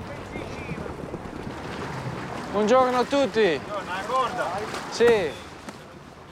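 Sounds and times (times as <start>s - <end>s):
small inflatable boat motor droning: 0.0s - 6.3s
water wash: 0.0s - 6.3s
speech: 2.5s - 5.4s.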